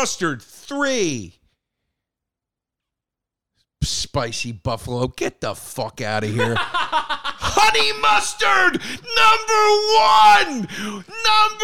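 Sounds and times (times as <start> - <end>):
speech: 0.0 - 1.4, 3.8 - 11.6
laughter: 6.2 - 9.1
person letting out a high-pitched scream: 7.4 - 11.6.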